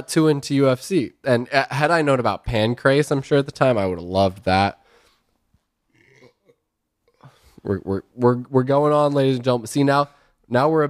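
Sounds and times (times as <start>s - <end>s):
speech: 0.0s - 4.8s, 7.6s - 10.8s
person burping: 5.9s - 6.6s.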